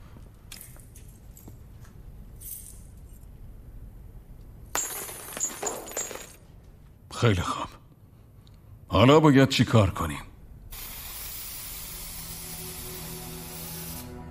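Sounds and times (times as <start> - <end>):
metallic keys jingling and clinking: 0.5 - 3.3
speech: 7.2 - 7.7, 9.0 - 10.3.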